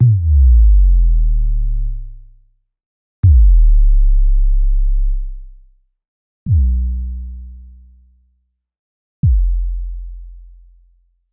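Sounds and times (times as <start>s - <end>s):
sub bass drops: 0.0s - 2.2s, 3.2s - 5.5s, 6.5s - 7.1s, 9.2s - 9.9s.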